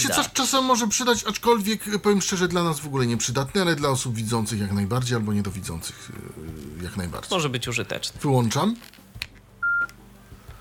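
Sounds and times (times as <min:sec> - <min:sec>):
speech: 0:00.0 - 0:09.0
mobile phone beep: 0:09.6 - 0:10.0.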